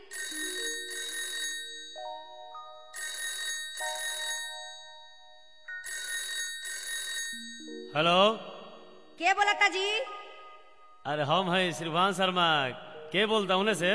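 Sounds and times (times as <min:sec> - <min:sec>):
telephone ringing with a bright electronic trill: 0:00.0 - 0:08.0
speech: 0:07.4 - 0:08.5, 0:09.2 - 0:10.2, 0:11.0 - 0:13.9.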